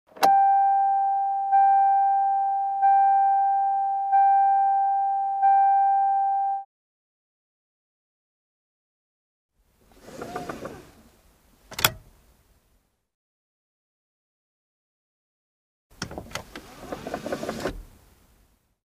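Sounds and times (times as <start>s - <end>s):
car unfastened seatbelt warning signal: 0.2s - 6.6s.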